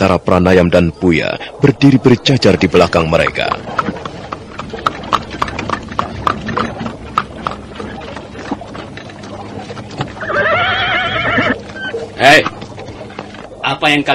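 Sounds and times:
speech: 0.0s - 4.0s, 12.2s - 12.6s, 13.8s - 14.1s
horse hooves clip-clopping on a road: 1.7s - 14.1s
horse neighing: 4.4s - 12.6s.

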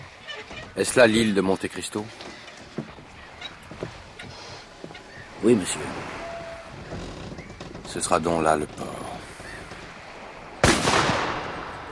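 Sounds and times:
speech: 0.8s - 2.3s, 5.4s - 6.2s, 7.9s - 9.1s
rifle gunshot fired on the shore as a signal: 10.6s - 11.9s.

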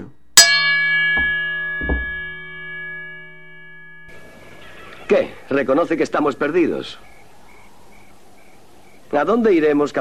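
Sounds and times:
bell chime used as an entrance cue: 0.4s - 4.5s
speech: 5.1s - 7.1s, 9.1s - 9.9s.

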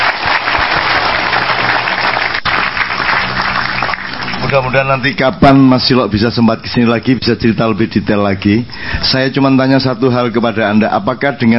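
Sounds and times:
audience applause: 0.0s - 5.3s
speech: 4.5s - 11.5s.

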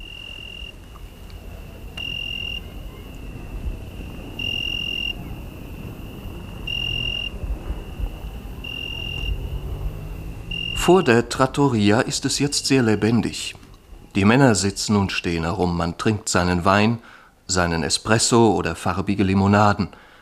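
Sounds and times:
many cicadas and crickets singing shrilly in the dark outside a village trattoria in Italy: 0.0s - 14.8s
faint low rumble: 0.0s - 15.2s
speech: 10.9s - 13.6s, 14.2s - 20.0s.

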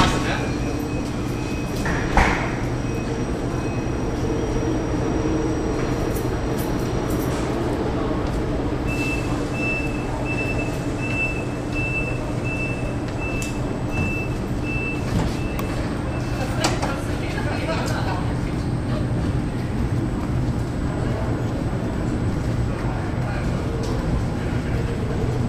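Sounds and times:
train leaving a platform at Hannover main station: 0.0s - 25.4s.

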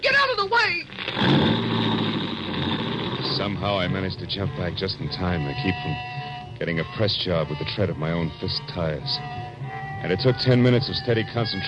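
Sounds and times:
coupe engine revving as the car pulls away: 1.0s - 4.0s
speech: 3.6s - 9.4s, 10.0s - 11.6s.

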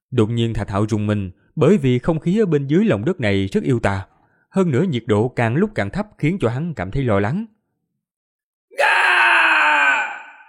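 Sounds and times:
speech: 0.1s - 7.6s
eerie shrieking howl of a magical elixir creature in a cold underground place: 8.8s - 10.4s.

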